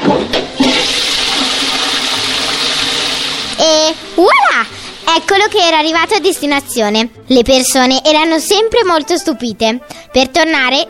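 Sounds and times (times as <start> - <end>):
toilet flush rush of water: 0.0 - 6.2
speech: 5.2 - 10.8.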